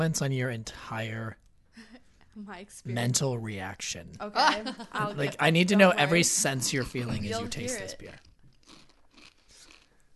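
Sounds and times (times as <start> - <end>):
speech: 0.0 - 1.4, 2.4 - 8.3
crisp crunching of chips being chewed: 8.1 - 10.1.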